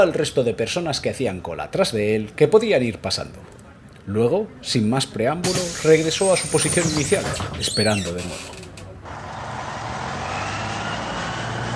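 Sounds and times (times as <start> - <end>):
speech: 0.0 - 8.7
public bus engine rumbling: 5.4 - 11.7.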